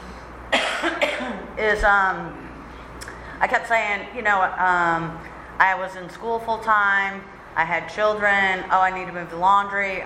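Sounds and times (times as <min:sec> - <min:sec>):
throat clearing: 0:00.5 - 0:01.4
person coughing: 0:00.5 - 0:01.6
speech: 0:01.6 - 0:02.4, 0:03.4 - 0:10.0.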